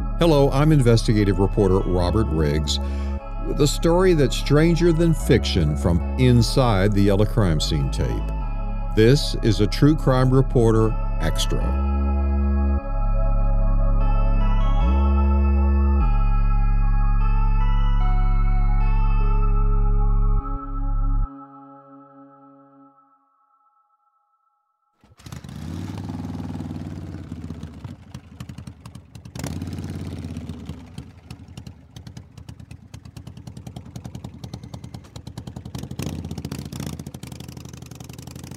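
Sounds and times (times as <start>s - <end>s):
brief sustained tone: 0.0s - 24.9s
speech: 0.2s - 8.4s, 9.0s - 11.9s
black Harley Davidson motorcycle engine idling: 25.0s - 38.5s.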